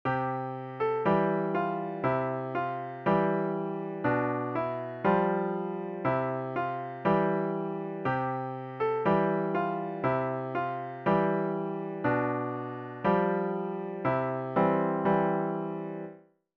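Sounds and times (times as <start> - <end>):
piano solo: 0.0 - 16.2.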